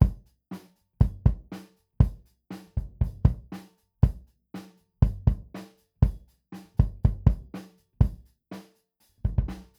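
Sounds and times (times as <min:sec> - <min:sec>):
Gretsch kick drum: 0:00.0 - 0:00.3, 0:01.0 - 0:02.2, 0:02.8 - 0:04.3, 0:05.0 - 0:08.3, 0:09.3 - 0:09.7.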